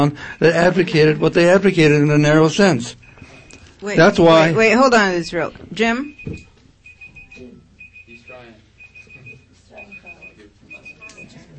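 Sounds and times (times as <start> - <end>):
speech: 0.0 - 3.0, 3.8 - 6.5
speaking timer alarm beeping: 2.9 - 11.5.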